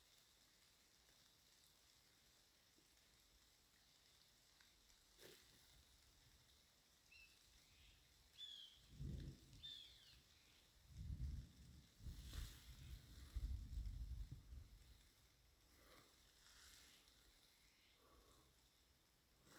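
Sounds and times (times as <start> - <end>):
steady rain falling outdoors: 0.0 - 19.5
low rumbling bursts: 8.8 - 10.1, 10.9 - 14.8.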